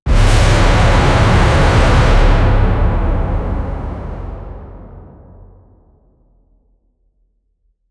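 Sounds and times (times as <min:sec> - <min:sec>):
monster sound: 0:00.1 - 0:05.6.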